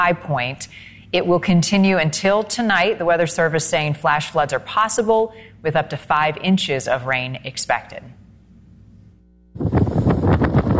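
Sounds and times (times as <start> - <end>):
speech: 0.0 - 8.2
strong tropical-storm wind at a lake in southeast Louisiana: 9.6 - 10.7.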